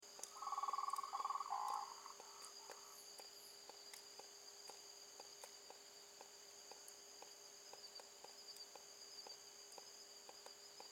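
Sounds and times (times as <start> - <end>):
steady high insect hum: 0.0 - 10.9
faint regular ticking: 0.1 - 10.9
frog giving a pulsed trill at night: 0.3 - 2.2.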